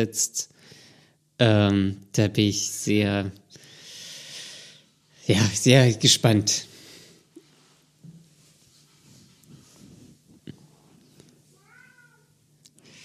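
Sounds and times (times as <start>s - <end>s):
speech: 0.0s - 0.6s, 1.4s - 3.4s, 5.3s - 6.7s
agitated cat meowing: 11.6s - 12.3s.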